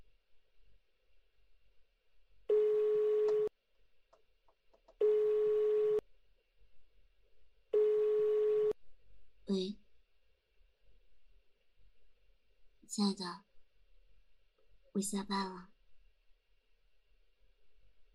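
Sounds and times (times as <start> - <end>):
telephone ringback tone heard through the handset while placing a call: 2.5 - 3.5, 5.0 - 6.0, 7.8 - 8.8
speech: 9.5 - 9.8, 12.9 - 13.5, 15.0 - 15.7.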